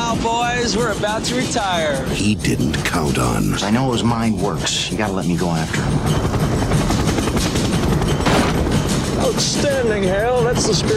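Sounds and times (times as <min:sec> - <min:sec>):
speech: 0:00.2 - 0:07.0, 0:09.2 - 0:10.9
rapid gunfire: 0:06.1 - 0:10.9.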